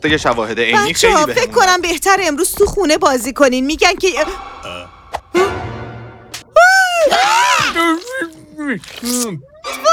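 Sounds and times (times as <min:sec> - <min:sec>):
speech: 0:00.0 - 0:04.5, 0:08.7 - 0:09.8
frightened person screaming at an intruder in the house: 0:06.7 - 0:09.1.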